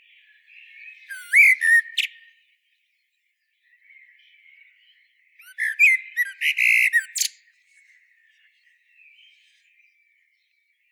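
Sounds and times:
Common blackbird Turdus merula song with fluted whistles: 1.0s - 2.2s, 5.4s - 7.4s.

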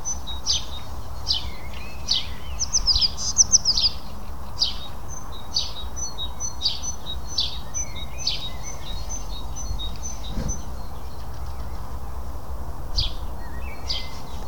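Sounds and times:
house sparrow Passer domesticus chirping: 0.0s - 12.2s, 12.9s - 14.4s
low background rumble: 8.8s - 13.6s.

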